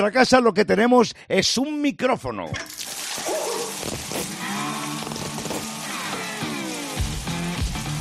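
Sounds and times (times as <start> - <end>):
speech: 0.0 - 4.4
shower water running: 2.7 - 7.9
person singing loudly under a shower: 4.4 - 7.0.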